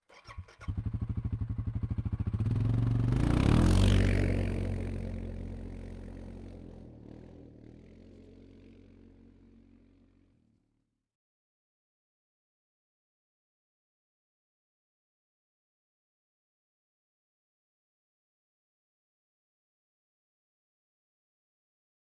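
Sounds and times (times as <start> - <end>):
Suzuki 750 AXi engine at low speed: 0.3 - 10.5.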